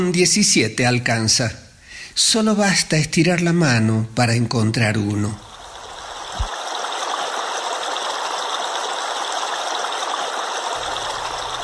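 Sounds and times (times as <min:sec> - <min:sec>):
speech: 0:00.0 - 0:05.5
stream water rushing and bubbling: 0:05.4 - 0:11.6.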